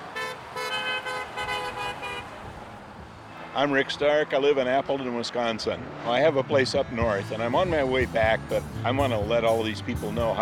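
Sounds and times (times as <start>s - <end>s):
car horns honking: 0.0s - 3.7s
passing traffic hum: 0.0s - 10.4s
speech: 3.6s - 10.4s.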